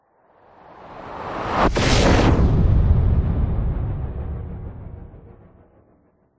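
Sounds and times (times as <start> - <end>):
sound design cinematic whoosh: 1.2 - 5.9
powerful explosion: 1.6 - 5.8.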